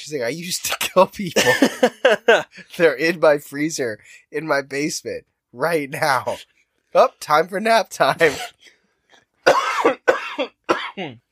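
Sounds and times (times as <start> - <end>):
speech: 0.0 - 8.6, 9.4 - 11.2
person giving harsh hacking coughs: 0.7 - 1.9, 8.2 - 8.6, 9.4 - 11.0
person laughing loudly: 1.3 - 2.7.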